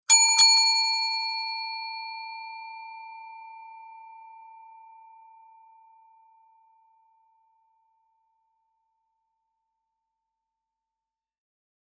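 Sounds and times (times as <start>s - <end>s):
doorbell ringing: 0.1s - 3.1s.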